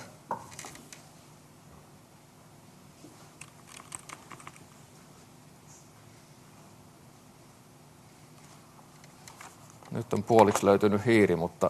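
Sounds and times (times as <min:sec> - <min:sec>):
typing on a laptop keyboard: 0:03.4 - 0:04.6
speech: 0:09.9 - 0:11.6.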